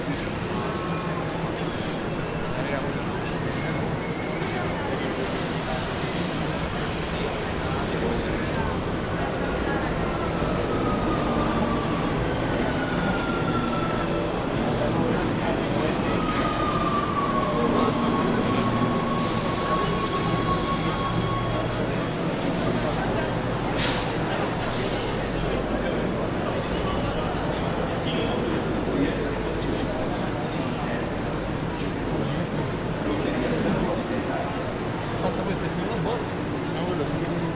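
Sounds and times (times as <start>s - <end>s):
metro train rumbling underground in Rome: 0.0s - 37.5s
murmured voices of metro passengers: 0.0s - 37.5s
metro train wheels and brakes squealing and hissing: 3.2s - 8.2s, 15.7s - 23.2s.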